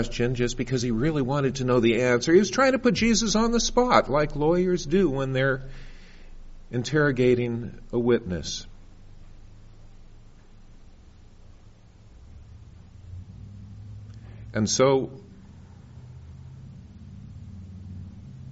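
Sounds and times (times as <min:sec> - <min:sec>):
speech: 0:00.0 - 0:05.9, 0:06.7 - 0:08.7, 0:14.6 - 0:15.2
car engine pulling away from a parking lot: 0:12.2 - 0:18.5.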